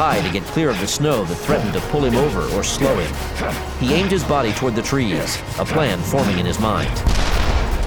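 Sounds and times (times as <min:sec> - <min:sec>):
speech: 0:00.0 - 0:07.2
cannon shot explosion: 0:07.0 - 0:07.7.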